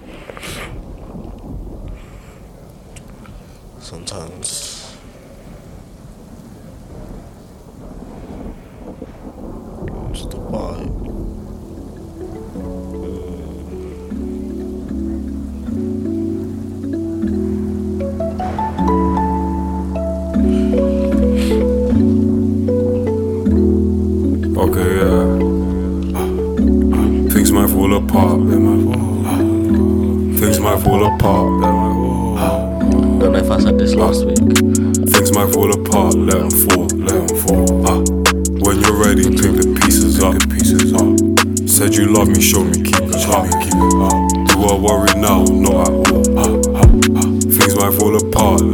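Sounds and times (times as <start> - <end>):
steady rain: 0.0 - 48.7
rolling thunder: 0.5 - 48.0
speech: 3.9 - 4.8
sustained musical chords: 9.7 - 48.7.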